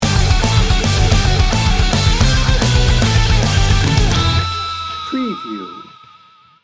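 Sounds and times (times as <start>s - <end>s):
heavy metal music sting bumper: 0.0s - 5.1s.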